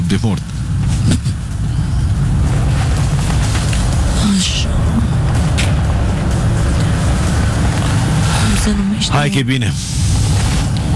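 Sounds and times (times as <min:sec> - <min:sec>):
speech: 0:00.1 - 0:01.3, 0:08.7 - 0:10.5
semi-truck tractor unit engine rumbling past: 0:01.5 - 0:09.0.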